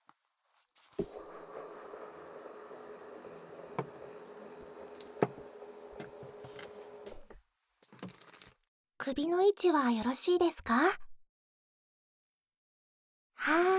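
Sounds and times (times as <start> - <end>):
salon chair reclining with a mechanical whir: 1.0 - 7.4
speech: 9.1 - 11.0.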